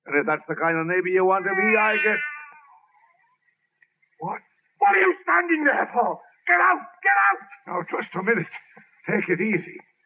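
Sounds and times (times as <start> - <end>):
speech: 0.1 - 2.3, 4.2 - 9.9
cat meowing: 1.4 - 2.8.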